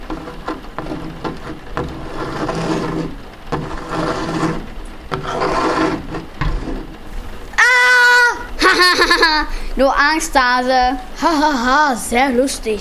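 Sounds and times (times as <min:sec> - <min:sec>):
hand scraping and scratching across a wooden floor: 0:00.0 - 0:07.1
laughter: 0:08.2 - 0:09.5
speech: 0:09.8 - 0:12.8.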